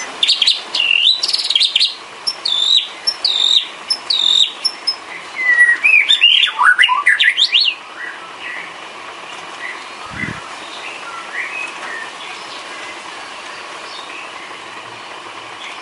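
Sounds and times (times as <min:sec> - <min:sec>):
background hiss: 0:00.0 - 0:15.8
bird song: 0:00.0 - 0:15.8.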